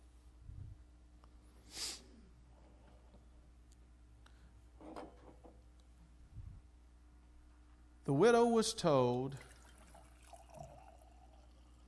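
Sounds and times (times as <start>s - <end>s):
speech: 8.1s - 9.5s
oil pouring into a jar: 9.3s - 11.8s.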